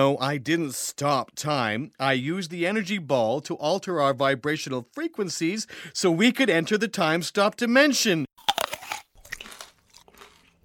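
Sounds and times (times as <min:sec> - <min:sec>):
speech: 0:00.0 - 0:08.6
person biting into and chewing a candy apple: 0:08.4 - 0:10.6.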